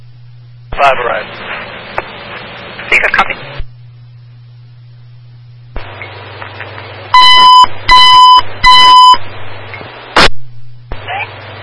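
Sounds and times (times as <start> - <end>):
low radio hum: 0.0 - 11.6
faint radio chatter: 0.7 - 3.6, 10.9 - 11.5
radio static burst: 0.7 - 3.7, 5.8 - 11.6
speech: 0.8 - 1.4, 3.0 - 3.6
dispatch electronic alert tones before a fire engine call: 7.2 - 9.2.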